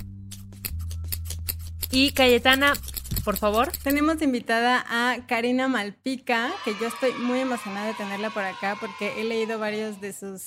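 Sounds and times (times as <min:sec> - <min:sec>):
rapid scissor snips made as a drumroll to welcome a guest: 0:00.0 - 0:04.2
speech: 0:01.9 - 0:10.4.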